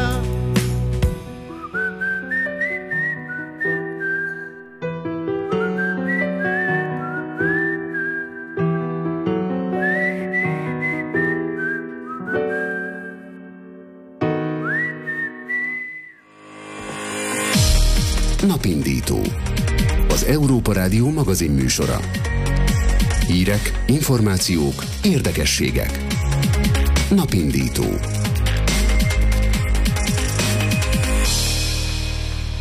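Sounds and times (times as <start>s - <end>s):
steady instrumental backing music: 0.0s - 32.6s
person whistling a lilting melody: 1.5s - 4.8s, 5.4s - 8.8s, 9.8s - 13.6s, 14.6s - 16.3s
speech: 20.6s - 22.3s, 23.3s - 26.3s, 27.1s - 28.2s.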